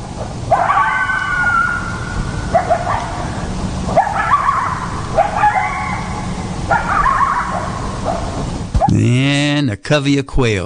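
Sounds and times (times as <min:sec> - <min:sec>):
steady low outdoor rumble: 0:00.0 - 0:10.6
coyotes yipping and howling: 0:00.1 - 0:08.4
speech: 0:09.9 - 0:10.6.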